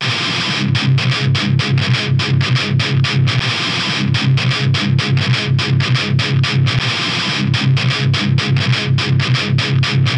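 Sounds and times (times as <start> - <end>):
Triaxis amplifier lead tone on red channel: 0.0 - 10.1.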